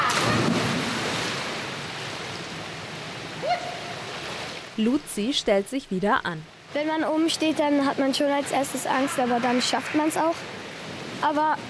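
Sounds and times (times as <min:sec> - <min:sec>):
girl jumping feet-first from a springboard into pool water: 0:00.0 - 0:01.7
speech: 0:04.8 - 0:10.6, 0:11.2 - 0:11.6.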